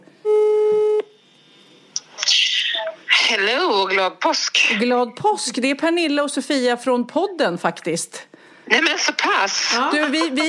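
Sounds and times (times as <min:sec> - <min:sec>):
telephone ringing tone while calling a friend: 0:00.3 - 0:01.0
speech: 0:03.3 - 0:10.4
laughter: 0:09.7 - 0:10.4.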